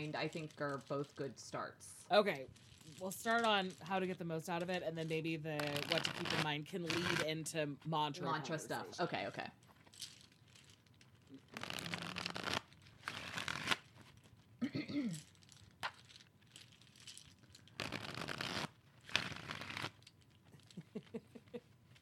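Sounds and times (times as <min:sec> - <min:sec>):
speech: 0:00.0 - 0:10.2, 0:14.7 - 0:15.3
tarot cards being shuffled: 0:05.6 - 0:07.3, 0:09.8 - 0:14.4, 0:15.2 - 0:22.0.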